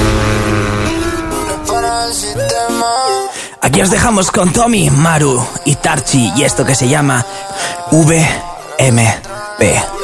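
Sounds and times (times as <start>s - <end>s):
car engine revving and accelerating through gear changes: 0.0s - 2.3s
speech: 3.7s - 10.0s.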